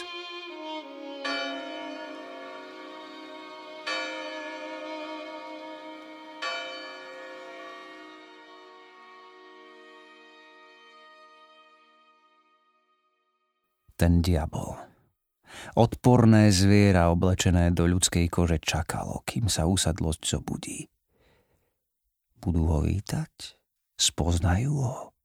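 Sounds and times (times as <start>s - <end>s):
large church bell tolling: 1.2s - 3.0s, 3.8s - 4.9s, 6.4s - 8.2s
speech: 14.0s - 14.9s, 15.6s - 21.0s, 22.4s - 25.1s.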